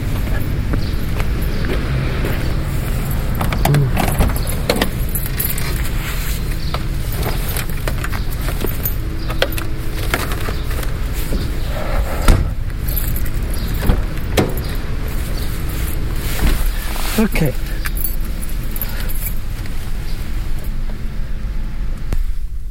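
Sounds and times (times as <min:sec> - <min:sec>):
steady outdoor hum: 0:00.0 - 0:22.6
keys jangling: 0:03.0 - 0:10.7, 0:11.3 - 0:16.9, 0:17.6 - 0:19.7
rustling and handling noises of person getting into a car: 0:03.5 - 0:20.8.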